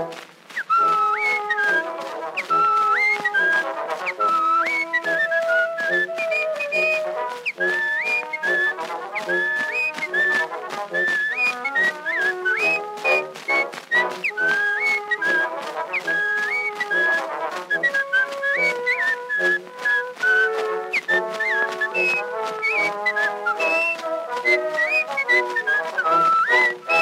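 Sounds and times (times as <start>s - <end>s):
person whistling a lively, bouncy melody: 0.6s - 27.0s.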